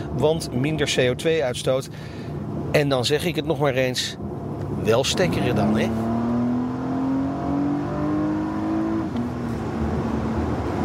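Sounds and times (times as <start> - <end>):
speech: 0.2 - 6.1
Porsche Panamera 4S E-Hybrid plug-in hybrid engine revving: 4.6 - 10.8.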